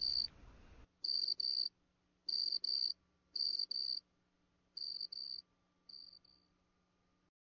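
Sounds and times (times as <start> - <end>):
cricket chirping by rubbing its wings: 0.0 - 0.3, 1.0 - 1.7, 2.3 - 4.0, 4.8 - 6.5
faint low hum: 0.0 - 7.3.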